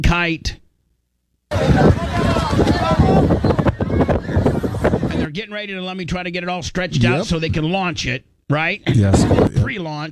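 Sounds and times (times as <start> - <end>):
speech: 0.0 - 0.6, 1.5 - 10.1
strong wind buffeting the microphone at a kite convention: 1.5 - 5.3, 9.0 - 9.6
voices at a kite convention: 1.5 - 5.3, 8.8 - 9.7.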